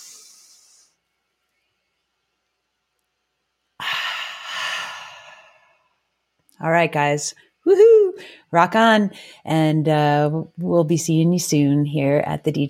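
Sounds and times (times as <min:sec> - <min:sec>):
person inhaling deeply: 0:03.8 - 0:06.0, 0:08.2 - 0:08.5
speech: 0:06.6 - 0:12.6.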